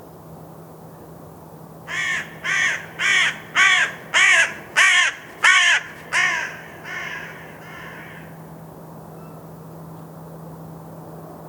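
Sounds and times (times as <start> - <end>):
low constant hum: 0.0 - 11.4
carrion crow Corvus corone cawing: 1.9 - 8.4.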